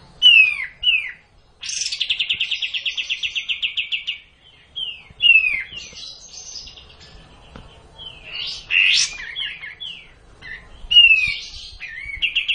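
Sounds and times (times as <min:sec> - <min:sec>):
traditional song: 0:00.0 - 0:12.5.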